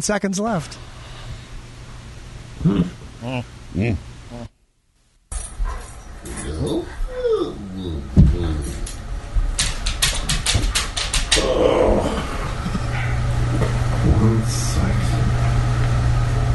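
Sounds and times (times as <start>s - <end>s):
speech: 0.0s - 1.0s, 2.6s - 4.5s
steady low hum: 0.0s - 16.5s
man making drowsy morning waking-up yawning groans and whiny moans: 11.4s - 12.6s.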